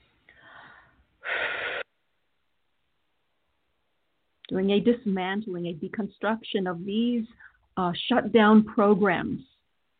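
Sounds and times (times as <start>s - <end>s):
deep breathing: 0.2s - 1.9s
speech: 4.5s - 9.5s.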